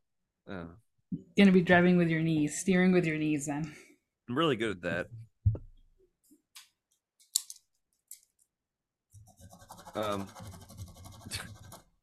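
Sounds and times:
speech: 0:00.5 - 0:05.3, 0:10.0 - 0:10.5
pen scratching on paper while crossing off items on a list: 0:09.2 - 0:12.0.

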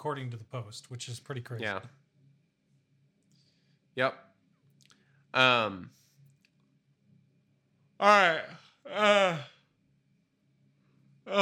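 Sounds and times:
speech: 0:00.0 - 0:02.0, 0:04.0 - 0:04.3, 0:05.3 - 0:06.0, 0:08.0 - 0:09.5
loud yawn: 0:08.0 - 0:09.6.

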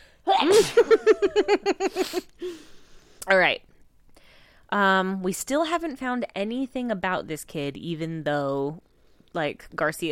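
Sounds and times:
person sneezing: 0:00.3 - 0:00.9
breathy laughter: 0:00.4 - 0:02.3
speech: 0:05.0 - 0:10.0.

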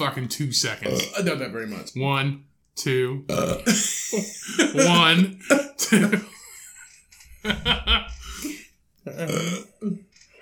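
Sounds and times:
speech: 0:00.0 - 0:06.3
person burping: 0:00.8 - 0:01.4, 0:03.3 - 0:03.8, 0:09.0 - 0:10.0
laughter: 0:03.6 - 0:08.7.

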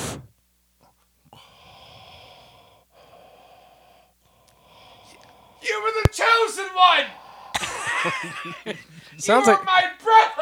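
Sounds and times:
snorting exhale: 0:00.0 - 0:00.3, 0:01.3 - 0:05.6
sniffing: 0:00.0 - 0:06.1
heavy breathing into a microphone: 0:01.3 - 0:07.8
laughter: 0:07.5 - 0:10.4
speech: 0:08.0 - 0:10.4.

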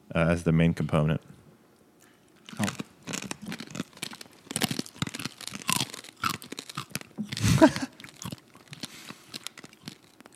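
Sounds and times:
speech: 0:00.1 - 0:01.4
roasted peaberry coffee beans in a blend being chewed: 0:02.4 - 0:10.3.

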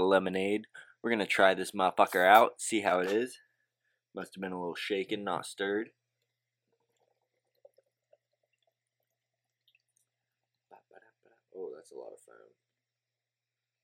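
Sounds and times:
speech: 0:00.1 - 0:03.4, 0:04.2 - 0:06.0
vocal burst: 0:02.0 - 0:03.2
hazy pale ale pouring into a glass: 0:07.0 - 0:09.9.

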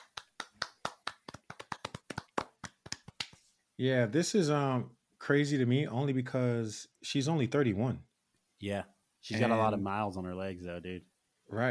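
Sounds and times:
single pair of hands clapping: 0:00.0 - 0:03.5
speech: 0:03.8 - 0:11.6.

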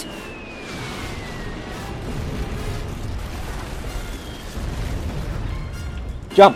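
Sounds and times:
bombs dropped from aircraft exploding: 0:00.0 - 0:06.5.

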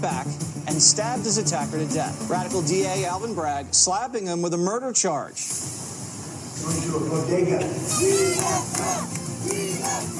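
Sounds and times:
speech: 0:00.0 - 0:05.9, 0:06.6 - 0:10.1
dense continuous din of overlapping voices: 0:00.0 - 0:10.1
crowd shouting outside a bodega in Upper Manhattan: 0:07.8 - 0:10.1.

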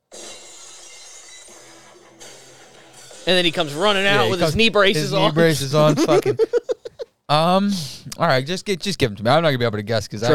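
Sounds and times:
glass shattering: 0:00.0 - 0:04.4
laughter: 0:01.7 - 0:07.2
speech: 0:03.2 - 0:06.7, 0:07.3 - 0:10.3.

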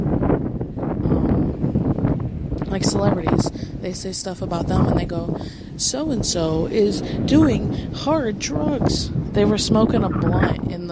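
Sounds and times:
wind blowing outdoors: 0:00.0 - 0:10.8
speech: 0:02.7 - 0:10.8.

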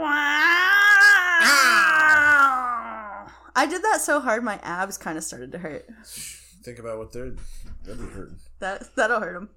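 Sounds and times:
person loudly imitating a cat meowing: 0:00.0 - 0:03.4
speech: 0:03.6 - 0:09.5.

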